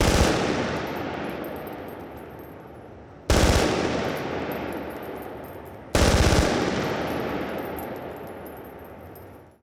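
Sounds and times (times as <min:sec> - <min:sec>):
wet machine gun shell casings falling indoors: 0:00.0 - 0:09.6.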